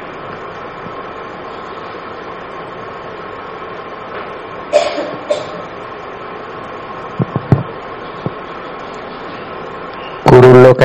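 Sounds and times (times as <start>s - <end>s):
steady low hum: 0.0s - 10.8s
person coughing: 4.7s - 5.7s
soft low thuds: 7.2s - 8.5s.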